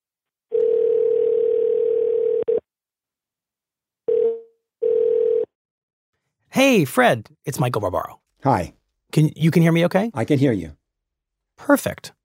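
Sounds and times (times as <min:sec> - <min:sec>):
landline telephone dial tone: 0:00.5 - 0:02.6, 0:04.1 - 0:05.5
speech: 0:06.6 - 0:10.8, 0:11.6 - 0:12.2.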